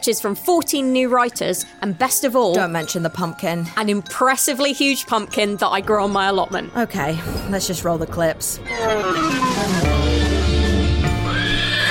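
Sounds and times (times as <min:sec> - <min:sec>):
speech: 0:00.0 - 0:09.8
steady tonal sounds: 0:02.7 - 0:11.8
horse neighing: 0:08.6 - 0:11.8.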